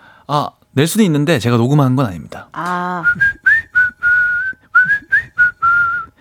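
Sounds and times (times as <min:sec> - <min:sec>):
speech: 0:00.3 - 0:03.4
person whistling a tune: 0:03.0 - 0:06.1.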